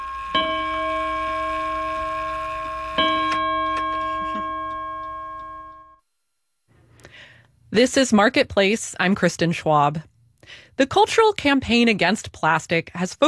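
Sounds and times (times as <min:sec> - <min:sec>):
resonant clock chimes: 0:00.0 - 0:06.0
speech: 0:07.7 - 0:13.2.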